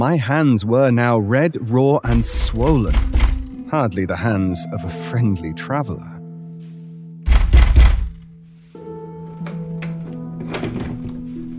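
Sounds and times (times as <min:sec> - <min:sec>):
speech: 0:00.0 - 0:06.2
heavy thuds: 0:02.1 - 0:03.6, 0:07.3 - 0:08.2.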